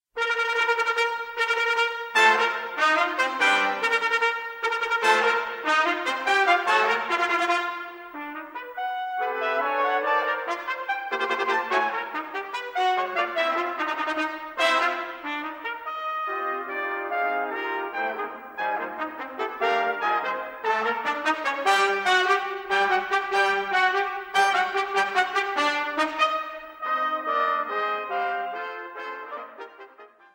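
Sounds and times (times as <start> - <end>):
five trumpets playing a fanfare: 0.2 - 30.3.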